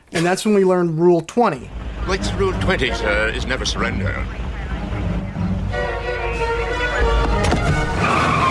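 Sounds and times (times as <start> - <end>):
speech: 0.2 - 4.4
car engine revving hard and pulling away: 1.7 - 8.4
car tires squealing: 1.7 - 8.4.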